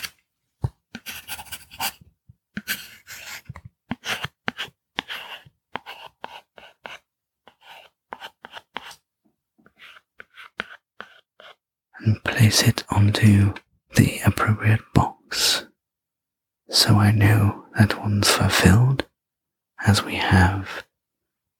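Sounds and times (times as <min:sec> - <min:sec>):
pen writing a name on a card: 0:00.9 - 0:09.0, 0:09.6 - 0:11.6
speech: 0:12.1 - 0:15.2, 0:16.8 - 0:19.1, 0:19.8 - 0:20.8.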